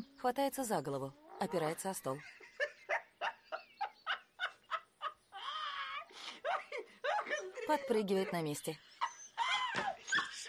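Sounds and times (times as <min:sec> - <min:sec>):
speech: 0:00.2 - 0:02.5, 0:07.7 - 0:08.9
laughter: 0:02.1 - 0:05.5, 0:06.3 - 0:10.4
black puppy whining: 0:09.0 - 0:10.4.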